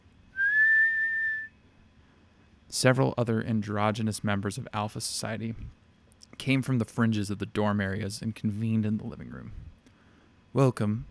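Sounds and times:
quiet low hum: 0.0s - 11.0s
loud sustained human whistle: 0.3s - 1.6s
speech: 2.7s - 5.8s, 6.4s - 9.7s, 10.5s - 11.0s.

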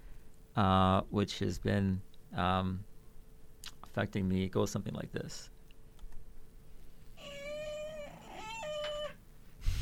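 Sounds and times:
speech: 0.6s - 2.9s, 4.0s - 5.5s
cat meowing at home: 7.2s - 9.2s.

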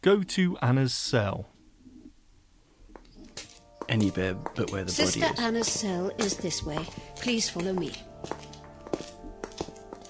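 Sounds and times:
speech: 0.0s - 1.5s, 3.9s - 8.4s
hard footsteps of two people walking through an abbey: 2.8s - 10.0s.

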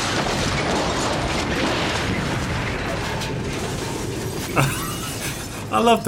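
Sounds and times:
big explosion rumbling: 0.0s - 6.0s
speech: 4.6s - 4.8s, 5.7s - 6.0s
laughter: 4.6s - 6.0s.

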